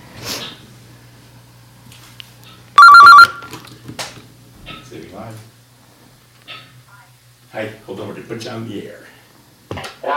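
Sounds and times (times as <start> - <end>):
telephone ringing for an incoming call: 2.8 - 3.6
speech: 5.1 - 5.6, 7.6 - 9.1.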